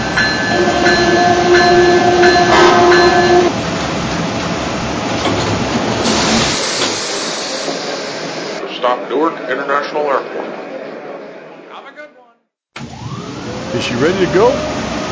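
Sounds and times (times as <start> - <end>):
passenger train rolling into a station: 0.0 - 8.8, 12.8 - 15.1
speech: 13.8 - 14.8.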